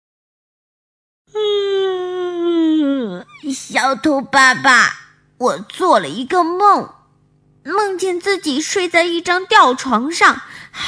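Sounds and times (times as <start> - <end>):
child yawning while waking and stretching: 1.3 - 3.5
speech: 3.5 - 7.0, 7.6 - 10.8.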